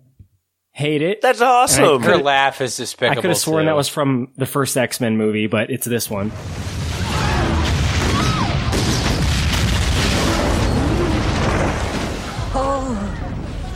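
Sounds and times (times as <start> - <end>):
speech: 0.8 - 6.8
massive ship explosion: 6.2 - 13.7.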